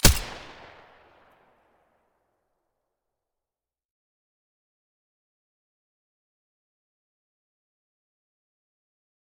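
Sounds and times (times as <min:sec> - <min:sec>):
silenced weapon gunshots in stereo: 0:00.0 - 0:01.2.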